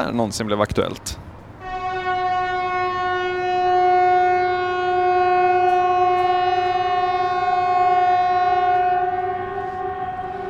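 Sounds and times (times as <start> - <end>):
speech: 0.0 - 1.2
air raid warning siren: 1.6 - 10.4.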